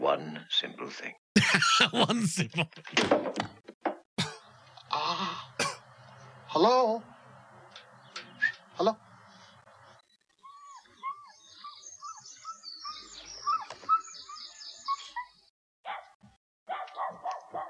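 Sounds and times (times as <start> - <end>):
speech: 0.6 - 3.5, 6.6 - 7.1
laughter: 1.4 - 3.1
birds chirping: 4.2 - 16.0
dog barking: 15.8 - 17.6.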